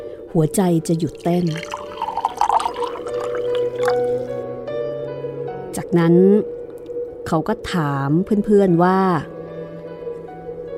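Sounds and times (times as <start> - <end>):
speech: 0.3 - 1.8, 5.9 - 6.5, 7.3 - 9.3
liquor pouring into a glass: 1.1 - 4.4.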